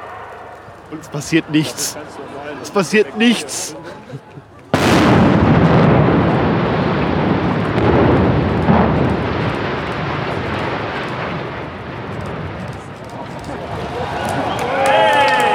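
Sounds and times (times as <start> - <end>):
speech: 0.9 - 4.5
laughter: 1.0 - 4.8
long heavy rumble of a falling structure: 4.7 - 14.6
demolition explosion blast: 4.7 - 15.4.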